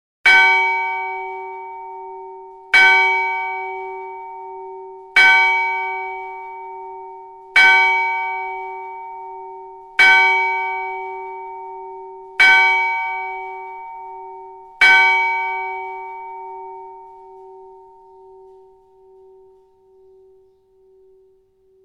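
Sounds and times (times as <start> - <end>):
church bell ringing: 0.3 - 21.8.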